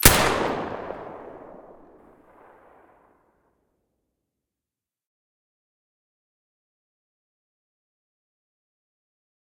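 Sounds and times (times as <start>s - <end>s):
SV98 with silencer: 0.0s - 2.6s.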